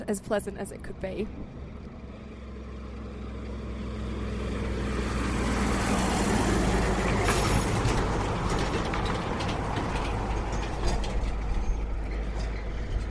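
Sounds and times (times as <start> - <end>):
speech: 0.1 - 1.6
three-carriage road train carrying ore rumbling past on dirt: 1.3 - 13.0
gravel rattling and clattering: 5.9 - 13.0.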